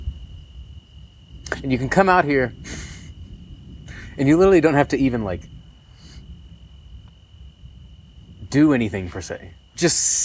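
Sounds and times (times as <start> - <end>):
crickets chirping outdoors: 0.0 - 10.2
speech: 1.6 - 2.8, 4.2 - 5.6, 8.5 - 10.2.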